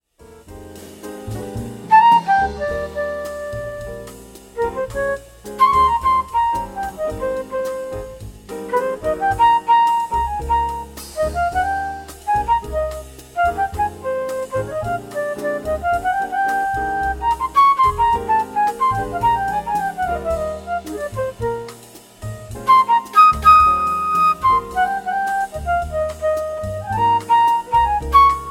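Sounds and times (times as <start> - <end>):
EWI USB electronic wind instrument with ARIA flute sound: 1.9 - 21.8, 22.6 - 28.4.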